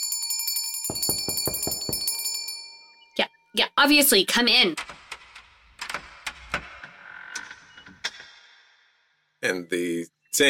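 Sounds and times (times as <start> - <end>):
bell rung hard and fast: 0.0 - 2.8
speech: 3.6 - 5.0, 9.4 - 10.4.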